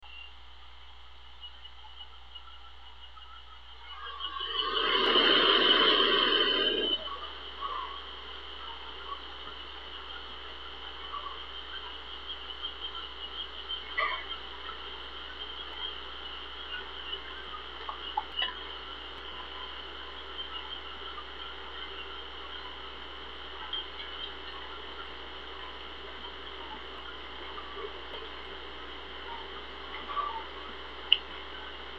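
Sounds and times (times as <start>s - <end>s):
country night noise: 0.0s - 31.9s.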